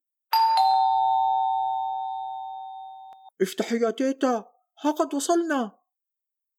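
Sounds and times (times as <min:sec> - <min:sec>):
doorbell chiming: 0:00.3 - 0:03.3
speech: 0:03.4 - 0:05.8.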